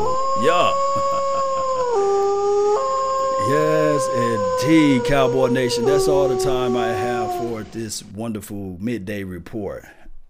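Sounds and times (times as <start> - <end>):
wolf howling: 0.0 - 8.0
speech: 0.4 - 1.1, 4.0 - 10.0.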